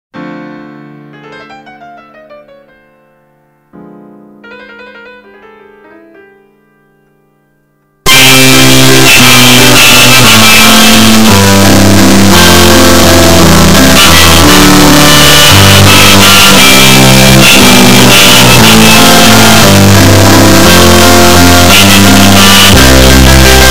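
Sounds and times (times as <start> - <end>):
sad loud melancholic piano: 0.2 - 23.6.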